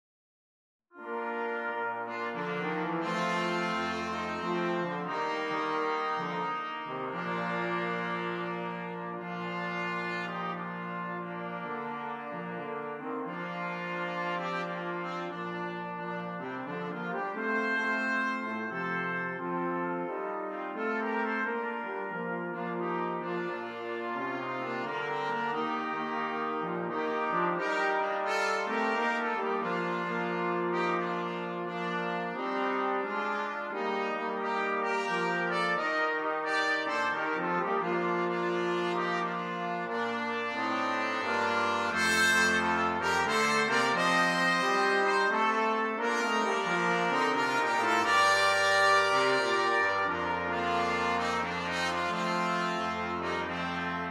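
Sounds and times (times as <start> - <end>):
jazz brass quartet: 0.9 - 54.0.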